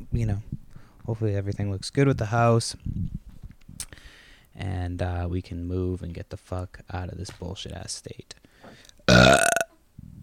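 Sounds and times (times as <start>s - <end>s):
speech: 0.2s - 3.1s, 4.6s - 9.4s
person burping: 9.1s - 9.7s.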